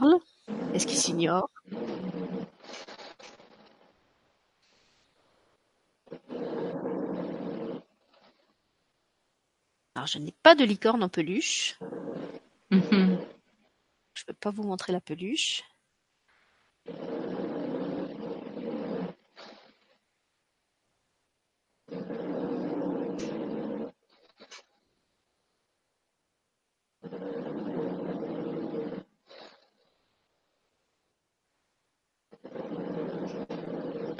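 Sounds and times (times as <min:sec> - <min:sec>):
speech: 0:00.0 - 0:01.6, 0:10.0 - 0:12.1, 0:14.4 - 0:15.7
dog snoring with rasping inhales and snuffling exhales: 0:00.0 - 0:03.9, 0:06.0 - 0:08.5, 0:11.8 - 0:13.4, 0:16.8 - 0:20.0, 0:21.8 - 0:24.7, 0:27.0 - 0:30.1, 0:32.3 - 0:34.1.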